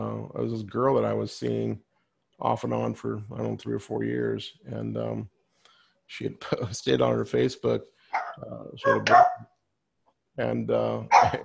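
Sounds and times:
speech: 0:00.3 - 0:05.4, 0:06.1 - 0:09.5, 0:10.4 - 0:11.4
dog barking: 0:08.1 - 0:09.5, 0:11.1 - 0:11.4.

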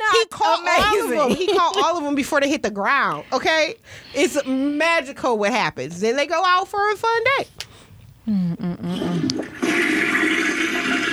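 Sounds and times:
speech: 0:00.2 - 0:07.6, 0:08.2 - 0:09.4
toilet flushing: 0:08.9 - 0:11.1.

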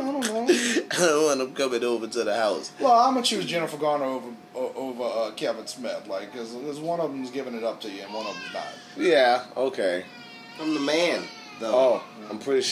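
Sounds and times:
speech: 0:01.0 - 0:12.6
young child crying: 0:08.1 - 0:09.0, 0:10.1 - 0:12.6.

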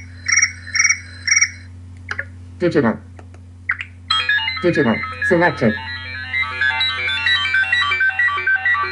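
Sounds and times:
crickets chirping: 0:00.0 - 0:01.7
steady low hum: 0:00.0 - 0:08.9
speech: 0:02.6 - 0:03.1, 0:04.6 - 0:05.9.

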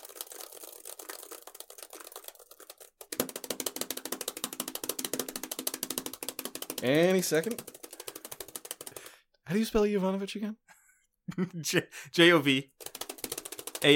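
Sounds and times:
fingers typing an email address on a computer keyboard: 0:00.0 - 0:09.2, 0:12.7 - 0:13.9
speech: 0:06.8 - 0:07.8, 0:09.5 - 0:10.6, 0:11.3 - 0:12.7, 0:13.8 - 0:13.9.

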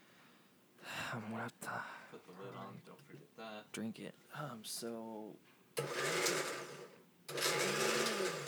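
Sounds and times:
speech: 0:01.1 - 0:08.4
blender blending a drink: 0:05.8 - 0:08.4.

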